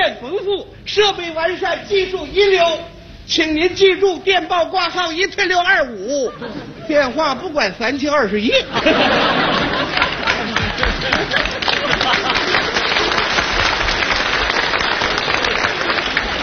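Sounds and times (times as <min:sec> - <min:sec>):
speech: 0:00.1 - 0:12.3
people chattering: 0:06.0 - 0:16.4
people laughing: 0:06.1 - 0:07.2, 0:08.5 - 0:16.4
audience applause at a live comedy performance: 0:09.0 - 0:16.4.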